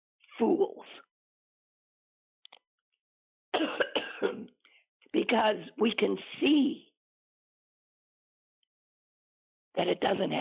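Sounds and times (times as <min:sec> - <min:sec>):
speech: 0:00.4 - 0:01.1, 0:05.2 - 0:06.9, 0:09.8 - 0:10.4
person with allergies clearing their throat: 0:03.6 - 0:04.4
person with allergies coughing: 0:03.6 - 0:04.4.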